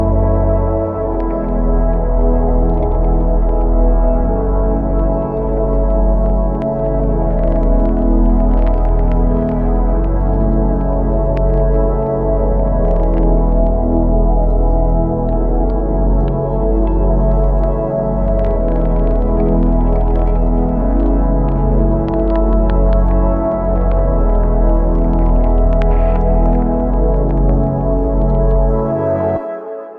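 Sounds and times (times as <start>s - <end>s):
cyber chill background music: 0.0s - 29.9s.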